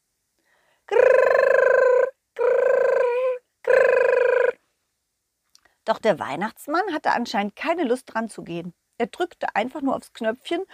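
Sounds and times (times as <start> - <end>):
voice imitating a telephone ringing with buzzy trilled bursts: 0.9 - 4.6
speech: 5.9 - 10.7.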